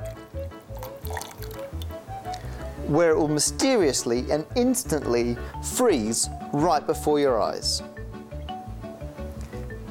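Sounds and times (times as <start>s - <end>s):
clear water poured from one beaker into another in a chemistry lab: 0.8s - 1.9s
speech: 2.9s - 8.0s.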